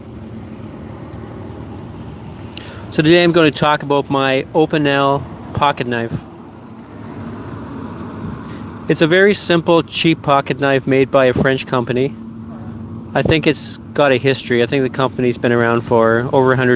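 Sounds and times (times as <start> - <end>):
downtown city traffic rumbling: 0.0 - 16.7
speech: 2.9 - 6.3, 8.9 - 12.2, 13.2 - 16.7.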